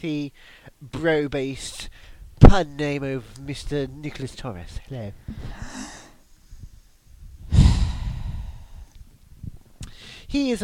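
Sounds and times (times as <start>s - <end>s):
speech: 0.0s - 5.9s, 10.3s - 10.6s
heavy breathing into the microphone: 5.2s - 6.8s, 7.4s - 9.0s, 9.8s - 10.3s.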